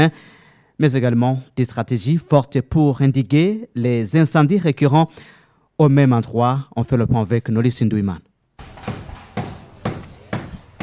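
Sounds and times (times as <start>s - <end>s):
speech: 0.0s - 8.3s
hammer striking freshly assembled wooden planks: 8.6s - 10.8s.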